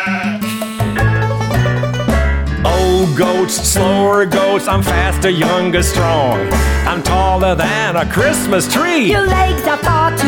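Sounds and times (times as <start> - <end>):
sheep bleating: 0.0 - 0.5
sustained musical notes: 0.5 - 8.4
speech: 3.1 - 10.2.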